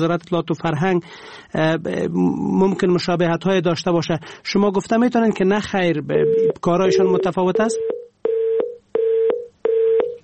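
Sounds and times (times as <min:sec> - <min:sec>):
speech: 0:00.0 - 0:08.0
telephone tone beeps after a call is cut off: 0:06.2 - 0:10.2.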